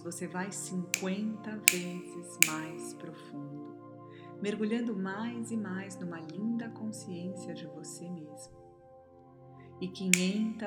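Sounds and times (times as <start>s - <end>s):
speech: 0.0s - 3.8s, 4.4s - 8.6s, 9.8s - 10.6s
crisp finger snaps: 1.0s - 2.9s, 10.2s - 10.6s.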